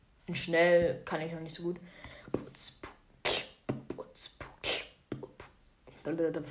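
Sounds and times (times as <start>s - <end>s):
speech: 0.3s - 2.9s, 4.2s - 4.5s, 6.0s - 6.4s
fast vocal beatbox pattern: 2.3s - 5.6s.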